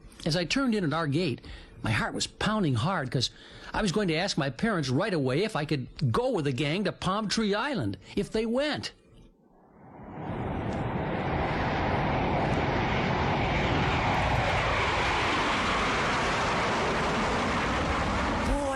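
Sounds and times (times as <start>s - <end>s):
speech: 0.2s - 9.0s
airplane engine roaring during takeoff: 9.6s - 18.7s.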